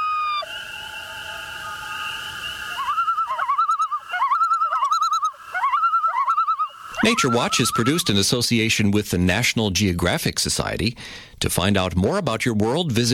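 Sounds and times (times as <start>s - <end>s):
common loon calling over open water: 0.0s - 8.1s
speech: 7.0s - 13.1s.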